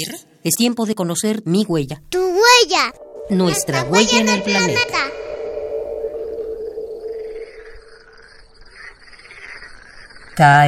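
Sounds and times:
speech: 0.0s - 5.1s, 10.4s - 10.6s
frog droning call at night: 2.9s - 8.6s
crickets trilling at night: 2.9s - 10.6s.

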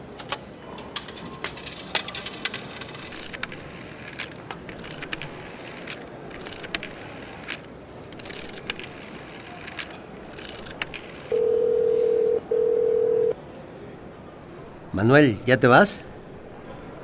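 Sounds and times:
clicks and taps of a phone number being dialed: 3.1s - 13.3s
long steady ringing tones on a phone line: 5.5s - 17.0s
speech: 15.0s - 16.1s.

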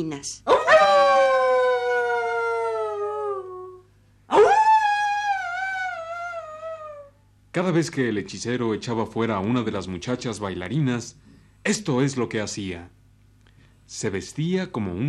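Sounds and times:
speech: 0.0s - 1.0s, 7.6s - 13.0s, 13.9s - 15.0s
wolves howling: 0.5s - 7.1s.

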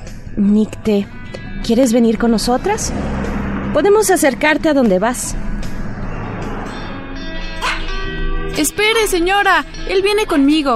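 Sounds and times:
speech: 0.4s - 3.1s, 3.7s - 5.4s, 8.6s - 10.7s
steady low rumble: 1.4s - 8.5s
small dog giving high-pitched yips and barks: 7.6s - 8.0s.

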